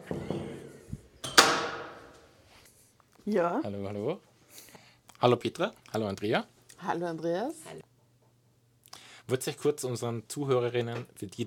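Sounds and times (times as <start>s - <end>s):
door latch clack as the door opens: 1.2s - 2.1s
speech: 3.3s - 7.8s, 9.3s - 11.4s.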